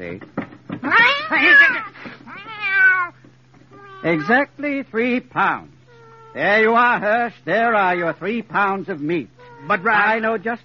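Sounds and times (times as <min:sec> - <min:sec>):
speech: 0:00.0 - 0:01.8, 0:04.0 - 0:10.6
cat meowing: 0:00.8 - 0:04.4, 0:05.9 - 0:06.5, 0:09.4 - 0:10.1.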